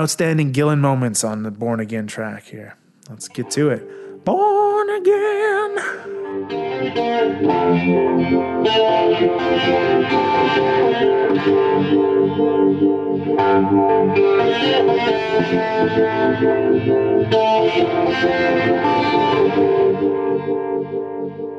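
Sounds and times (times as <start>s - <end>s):
speech: 0.0s - 5.2s, 6.5s - 20.7s
electric guitar with 70s-style phaser, chorus and reverb: 3.2s - 21.5s.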